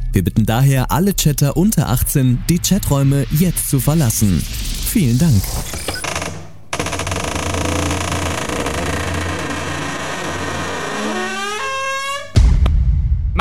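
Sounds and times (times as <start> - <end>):
speech: 0.1 - 6.0
low rumble: 0.9 - 11.8
door creaking: 5.2 - 12.4.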